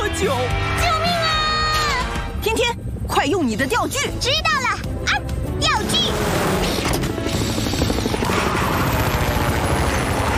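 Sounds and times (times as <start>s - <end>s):
speech: 0.2s - 0.7s, 2.5s - 4.9s
helicopter rotors churning up strong wind: 1.0s - 10.3s.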